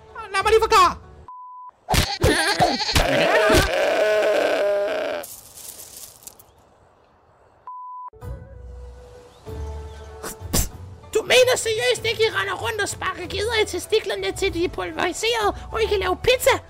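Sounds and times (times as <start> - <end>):
speech: 0.4 - 1.0, 2.5 - 3.9, 12.0 - 16.6
short electronic beep tones: 1.3 - 1.8, 7.7 - 8.1
goat bleating in wavering nasal cries: 1.9 - 5.3.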